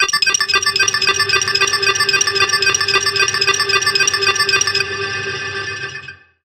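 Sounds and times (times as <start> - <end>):
computer danger warning stinger: 0.0 - 4.8.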